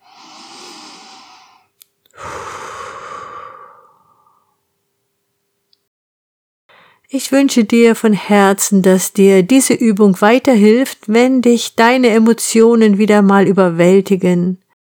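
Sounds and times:
deep inhale during a guided relaxation exercise: 0.0 - 4.6, 6.7 - 7.1
long loud exhale during a guided relaxation exercise: 0.0 - 4.6
speech: 7.1 - 14.6.

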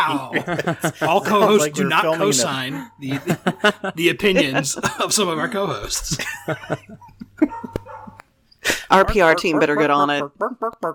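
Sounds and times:
speech: 0.0 - 7.6, 8.7 - 10.9
laughter: 0.0 - 7.9
dog barking: 7.5 - 8.2.

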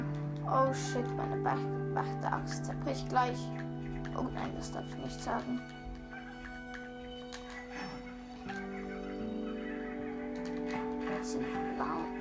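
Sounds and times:
steady musical drone: 0.0 - 12.1
speech: 0.5 - 5.8, 11.4 - 12.1
monkey calls in a video game forest soundscape: 5.3 - 12.1.

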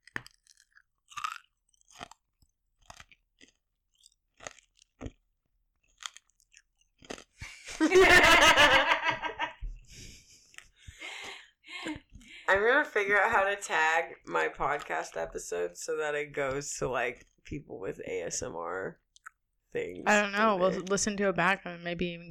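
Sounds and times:
chewing and crunching a Blow Pop lollipop: 0.0 - 7.6, 10.1 - 19.4
laughter: 7.4 - 10.4
speech: 7.8 - 8.4, 12.8 - 19.0, 19.7 - 22.2.

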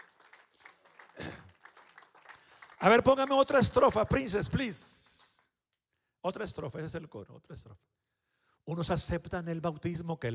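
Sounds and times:
audience applause: 0.0 - 3.6
speech: 2.8 - 5.0, 6.2 - 8.1, 8.7 - 10.3.

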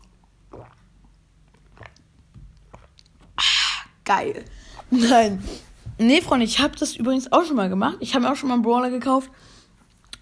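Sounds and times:
person drinking water with soft wet gulps: 0.0 - 4.0
speech: 4.1 - 9.5.

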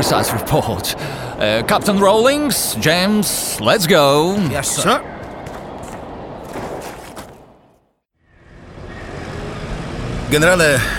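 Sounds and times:
speech: 0.1 - 5.2, 10.3 - 10.9
car engine and road noise while carrying passengers: 8.2 - 10.9.

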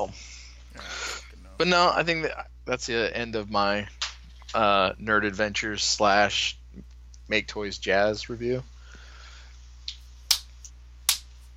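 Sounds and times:
steady low hum: 0.0 - 11.5
speech: 1.6 - 8.7
sharp deliberate hand claps: 11.1 - 11.3.

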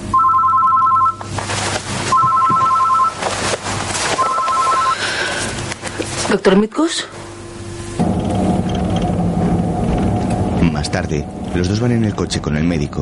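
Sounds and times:
telephone ringing: 0.0 - 1.3, 2.1 - 3.3, 4.2 - 5.2
low steady hum: 0.0 - 13.0
speech: 6.4 - 7.2, 10.8 - 13.0.

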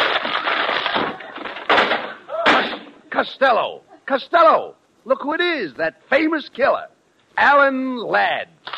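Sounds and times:
door smashed with a splintering crash as someone walks through it: 0.0 - 3.0
speech: 3.2 - 8.6.

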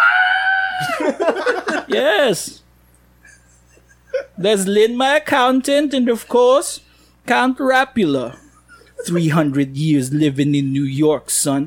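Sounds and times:
high-pitched shriek breaking into a raspy sputter: 0.0 - 0.9
laughter: 0.8 - 2.3, 3.2 - 4.5, 8.3 - 9.5
speech: 0.8 - 2.6, 4.4 - 8.4, 9.0 - 11.6.

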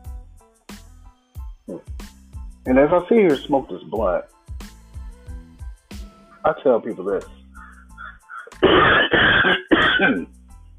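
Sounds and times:
speech: 2.6 - 4.4, 6.4 - 7.4, 9.1 - 10.3
harsh raspy coughing: 8.6 - 10.3.

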